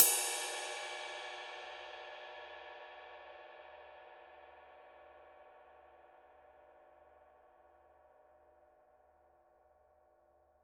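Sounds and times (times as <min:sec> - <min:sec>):
Paiste Masters 21 dark dry ride cymbal body: 0:00.0 - 0:02.6.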